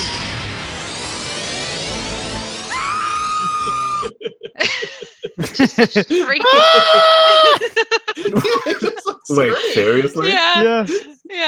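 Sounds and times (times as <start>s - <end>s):
video game creature shrieking: 2.7s - 4.2s, 6.4s - 7.7s
laughter: 3.4s - 11.2s
speech: 5.6s - 11.4s.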